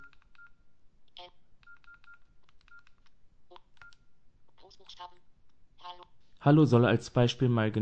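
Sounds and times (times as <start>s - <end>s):
phone keypad beeps: 0.0s - 0.6s, 1.2s - 4.2s
speech: 5.9s - 7.8s.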